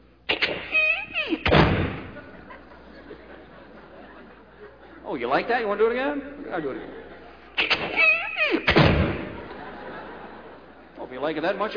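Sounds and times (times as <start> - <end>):
heavy thud of front door swinging and settling: 1.5 - 2.2, 8.7 - 9.4
laughter: 2.0 - 5.6, 6.2 - 11.7
speech: 5.1 - 7.0, 11.2 - 11.7.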